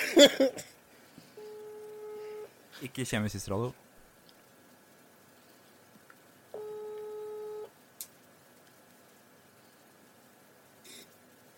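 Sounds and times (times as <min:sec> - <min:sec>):
speech: 0:00.2 - 0:00.7, 0:02.8 - 0:03.8
telephone ringing tone during a call: 0:01.4 - 0:02.5, 0:06.5 - 0:07.7.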